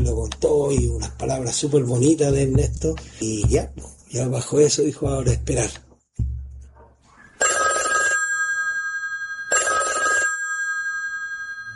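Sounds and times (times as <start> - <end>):
speech: 0.0 - 5.9
telephone bell ringing with a bright metallic trill at the end of a hallway: 7.4 - 11.7.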